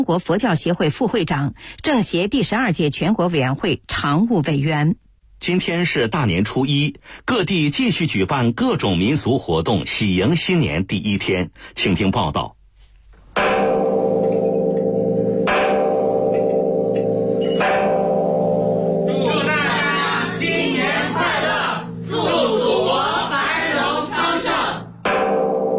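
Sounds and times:
speech: 0.0 - 12.6
large temple bell ringing in the bell tower of a Confucius temple: 13.4 - 25.7
crowd noise: 19.1 - 25.0.

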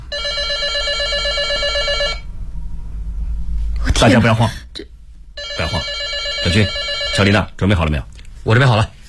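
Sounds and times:
telephone ringing: 0.0 - 2.3, 5.4 - 7.4
low hum: 0.0 - 6.8
speech: 4.0 - 4.6, 6.4 - 9.0.

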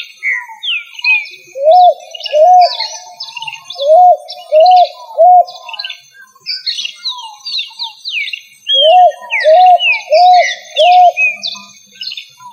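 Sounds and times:
other birds twittering and chirping: 0.0 - 12.5
pigeon giving arched hoots: 1.6 - 5.7, 8.7 - 11.4.

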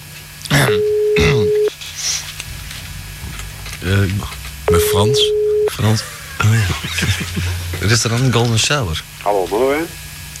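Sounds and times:
speech: 0.7 - 0.9, 3.8 - 10.1
answering machine beep: 0.7 - 1.7, 4.7 - 5.8
laughter: 5.7 - 8.2.

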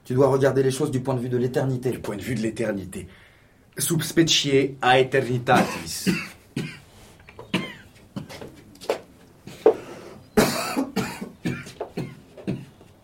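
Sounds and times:
speech: 0.1 - 3.2, 3.8 - 6.7
harsh coughing with throat-clearing: 5.5 - 6.9, 7.5 - 8.4, 10.4 - 12.8.

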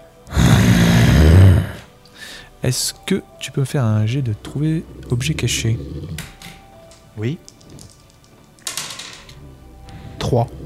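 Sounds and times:
harsh raspy heavy breathing: 0.3 - 2.5, 4.1 - 6.6, 9.4 - 10.6
speech: 2.6 - 6.4, 7.2 - 7.5, 10.3 - 10.6.

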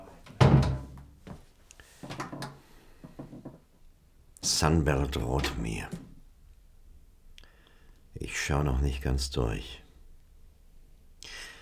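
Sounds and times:
wooden door being shut: 0.0 - 1.4, 5.1 - 6.2
speech: 4.5 - 6.0, 8.5 - 9.8.

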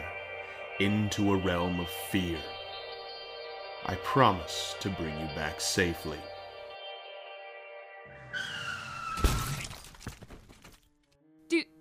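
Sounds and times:
speech: 0.8 - 2.6, 3.8 - 6.3
car tires screeching in a long skid: 8.3 - 9.6
sharp crunching impact: 9.2 - 11.1.

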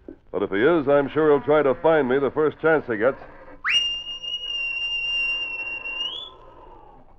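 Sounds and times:
speech: 0.4 - 3.4
shrill blast of a sergeant's whistle: 3.6 - 6.3.

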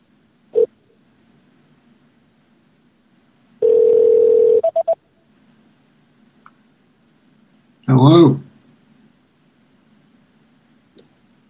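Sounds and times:
touch-tone telephone dialing beeps: 3.6 - 5.0.

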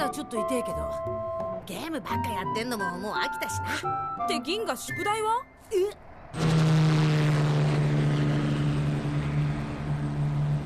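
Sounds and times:
speech: 0.2 - 6.6
construction helicopter flying overhead: 6.0 - 10.6.

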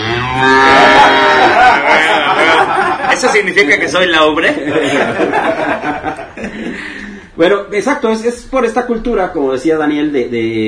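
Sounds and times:
cow mooing: 0.0 - 1.2
speech: 0.4 - 0.9, 3.2 - 10.6
laughter: 0.5 - 7.2.

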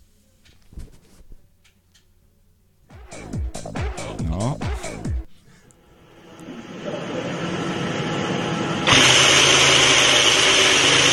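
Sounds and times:
Ferrari F2018 Formula 1 car engine starting for the first time: 6.0 - 11.1.

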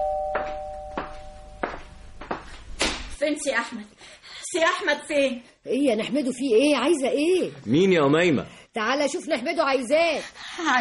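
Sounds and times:
doorbell ringing with a steady buzzing tone: 0.0 - 1.6
speech: 0.4 - 0.7, 3.2 - 10.7.

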